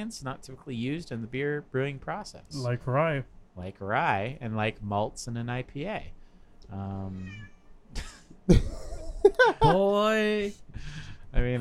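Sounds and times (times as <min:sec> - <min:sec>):
speech: 0:00.0 - 0:11.5
cat meowing: 0:07.1 - 0:07.7
laughter: 0:08.0 - 0:09.9.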